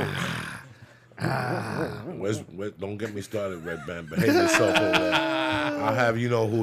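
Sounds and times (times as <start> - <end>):
person grunting in exaggerated imitation of sex noises: 0.0 - 2.2, 4.2 - 6.0
speech: 1.4 - 6.6
laughter: 3.4 - 6.2.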